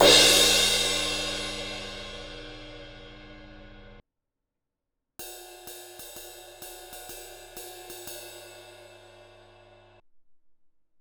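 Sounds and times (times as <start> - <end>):
18 inch fast crash ride cymbal bell: 0.0 - 4.0.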